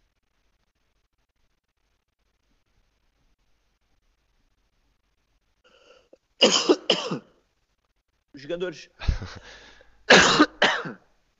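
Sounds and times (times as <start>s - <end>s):
speech: 6.4s - 6.8s, 8.5s - 9.4s
person clearing throat: 6.4s - 7.3s, 10.1s - 11.1s.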